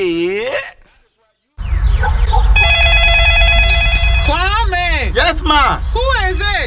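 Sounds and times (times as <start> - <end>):
busy rumbling background: 1.6 - 6.6
telephone ringing with a bright bell tone: 2.6 - 4.6
faint vocal sounds: 4.2 - 6.6.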